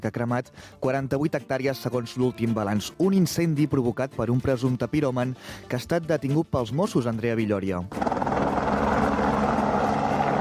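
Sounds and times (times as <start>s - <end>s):
speech: 0.0s - 8.2s
firefighting helicopters loading water from a municipal pool during a wildfire: 7.9s - 10.4s.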